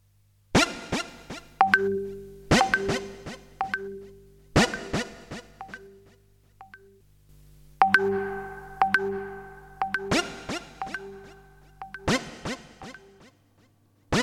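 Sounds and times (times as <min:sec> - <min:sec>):
bright electronic mobile phone message notification tone: 0:01.6 - 0:06.0, 0:07.8 - 0:12.2.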